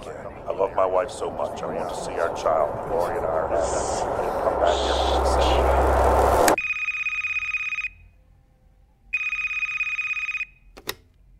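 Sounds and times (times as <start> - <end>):
speech: 0.6 - 6.3
telephone next to a bed ringing in an electronic trill: 6.6 - 8.0, 9.2 - 10.6.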